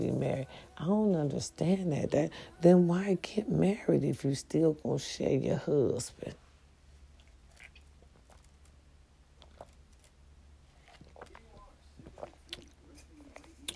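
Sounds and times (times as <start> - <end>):
speech: 0.0 - 6.4
steady low hum: 0.0 - 13.7
person sipping a drink with slurps and mouth clicks: 7.2 - 8.6, 10.8 - 13.7.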